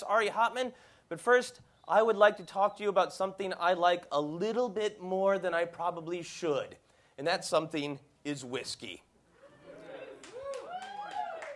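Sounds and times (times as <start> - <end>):
speech: 0.0 - 9.1
audience cheering and whooping: 9.4 - 11.5
audience applause: 9.8 - 11.5.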